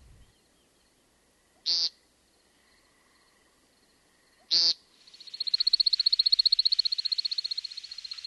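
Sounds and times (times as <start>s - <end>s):
American woodcock peent calls: 4.5s - 8.2s
American woodcock rapid high-pitched twittering: 5.1s - 8.2s.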